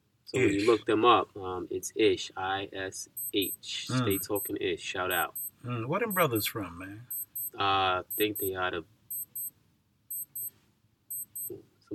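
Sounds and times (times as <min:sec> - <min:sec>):
speech: 0:00.3 - 0:08.9
timer alarm beeping: 0:03.2 - 0:04.5, 0:05.1 - 0:06.5, 0:07.1 - 0:09.5, 0:10.1 - 0:10.5, 0:11.1 - 0:11.5.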